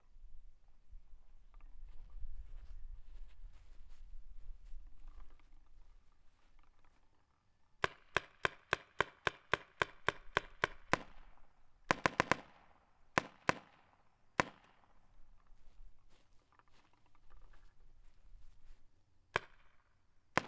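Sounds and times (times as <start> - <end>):
Spyder long-barrel paintball gun firing, heard from behind: 7.8 - 15.1, 19.3 - 20.4.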